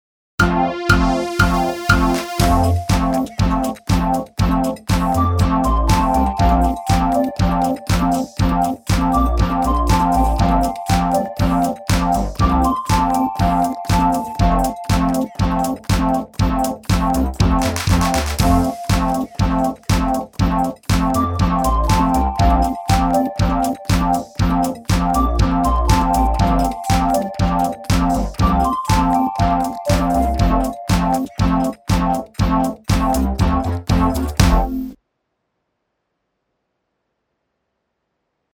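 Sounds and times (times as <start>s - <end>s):
happy techno music at 120 BPM: 0.4s - 35.0s.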